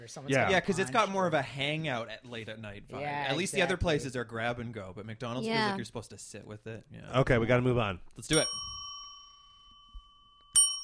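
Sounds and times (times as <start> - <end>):
speech: 0.1 - 8.7
bell dinging: 8.3 - 10.8.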